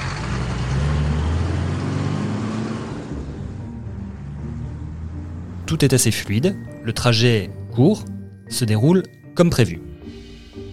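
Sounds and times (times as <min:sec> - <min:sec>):
heavy armored vehicle engines of a police convoy rumbling: 0:00.0 - 0:07.8
road noise: 0:00.0 - 0:10.7
speech: 0:05.7 - 0:09.9.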